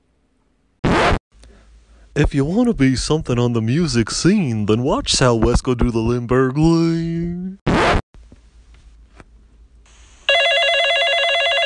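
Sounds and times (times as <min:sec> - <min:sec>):
zipping rasp: 0:00.8 - 0:01.2, 0:07.7 - 0:08.0
speech: 0:02.2 - 0:07.7
telephone warbling electronic ring: 0:10.3 - 0:11.6.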